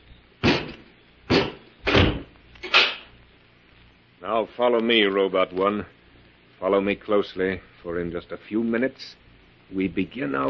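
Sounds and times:
heavy door shutting and bolting with rattling clunks: 0:01.8 - 0:03.0
speech: 0:04.2 - 0:06.0, 0:06.6 - 0:10.4.

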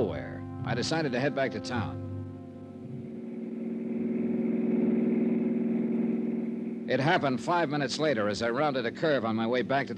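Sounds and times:
speech: 0:00.7 - 0:02.1, 0:06.9 - 0:09.9
car engine revving and pulling away from the back of a house: 0:02.6 - 0:09.9.

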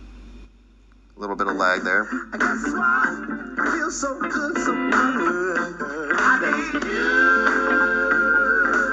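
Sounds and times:
speech: 0:01.2 - 0:07.8
music from a third-generation Echo Dot smart speaker at max volume: 0:02.0 - 0:08.9.

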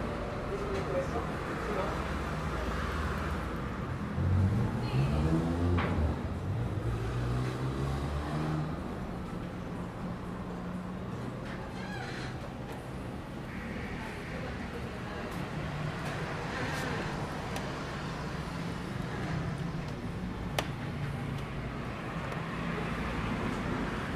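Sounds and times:
road noise rumble drifting into a hotel lobby: 0:00.0 - 0:24.1
vehicle passing: 0:01.6 - 0:09.0, 0:13.9 - 0:24.1.

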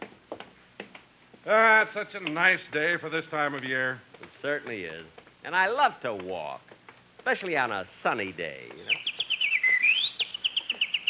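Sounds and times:
speech: 0:01.5 - 0:09.0
bird chirping on a lawn: 0:08.8 - 0:11.0.

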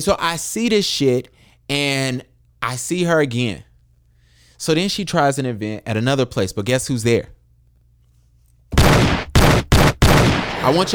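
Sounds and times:
speech: 0:00.0 - 0:03.7, 0:04.6 - 0:07.4, 0:10.6 - 0:10.9
gunshot sound effect bursts: 0:08.8 - 0:10.9.

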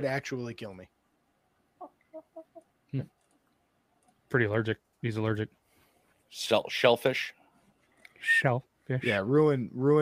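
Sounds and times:
speech: 0:00.0 - 0:01.0, 0:02.9 - 0:03.2, 0:04.3 - 0:05.6, 0:06.3 - 0:07.4, 0:08.2 - 0:10.0
chicken clucking: 0:01.8 - 0:02.7.

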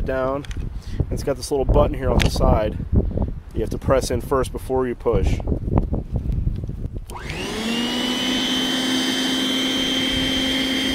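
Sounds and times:
speech: 0:00.0 - 0:05.6
electric snow blower motor running: 0:07.1 - 0:10.9.

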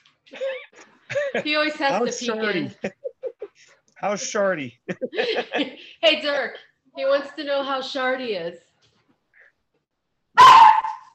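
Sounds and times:
laughter: 0:00.3 - 0:05.9
speech: 0:01.3 - 0:03.0, 0:04.0 - 0:08.6
single loud dog bark with whining tail: 0:10.4 - 0:11.1.

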